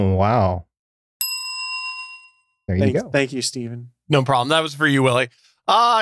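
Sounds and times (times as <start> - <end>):
speech: 0.0 - 0.7, 2.7 - 5.9
bicycle bell ding: 1.2 - 2.7.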